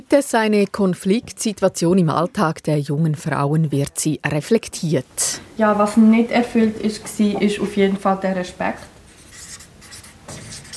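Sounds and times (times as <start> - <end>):
speech: 0.1 - 8.9
pen or marker scratching across a large sheet of paper: 9.1 - 10.7.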